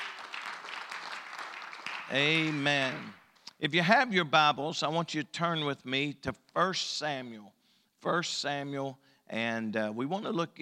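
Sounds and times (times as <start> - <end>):
crowd clapping: 0.0 - 3.2
speech: 2.1 - 10.5.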